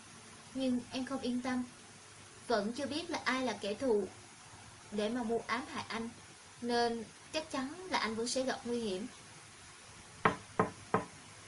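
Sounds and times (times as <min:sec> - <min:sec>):
speech: 0:00.6 - 0:01.8, 0:02.5 - 0:04.2, 0:04.9 - 0:09.2
knocking on a room door: 0:10.2 - 0:11.2.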